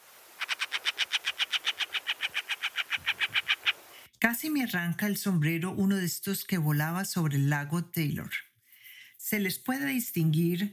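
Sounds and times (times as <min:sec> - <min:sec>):
hen harrier chattering call: 0:00.4 - 0:03.8
speech: 0:04.3 - 0:08.4, 0:09.3 - 0:10.7.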